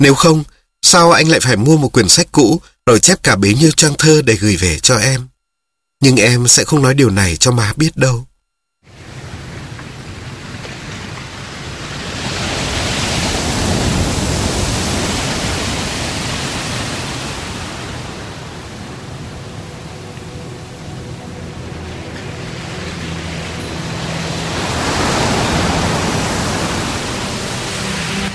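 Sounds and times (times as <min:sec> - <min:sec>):
speech: 0:00.0 - 0:05.3, 0:06.0 - 0:08.3
sea waves breaking on a shore at night: 0:08.8 - 0:28.3.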